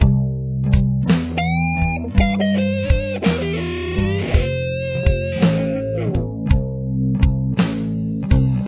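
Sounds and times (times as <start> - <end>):
guitar lick: 0.0 - 8.6.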